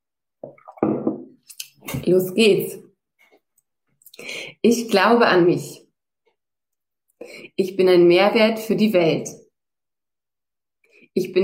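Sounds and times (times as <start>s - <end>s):
water sip with wet slurp and gulp: 0.4s - 1.9s
speech: 1.9s - 2.9s, 4.4s - 5.8s, 7.2s - 9.4s, 11.2s - 11.4s.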